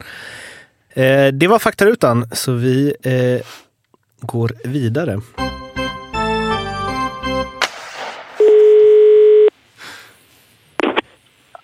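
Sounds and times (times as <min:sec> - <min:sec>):
speech: 0:01.0 - 0:03.6, 0:04.2 - 0:05.6
burst of music: 0:05.4 - 0:07.6
telephone ringing tone of an outgoing call: 0:08.4 - 0:09.5.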